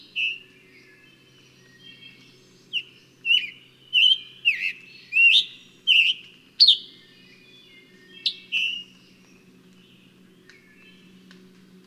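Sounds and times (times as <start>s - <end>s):
bird singing whistled phrases: 2.7s - 8.9s.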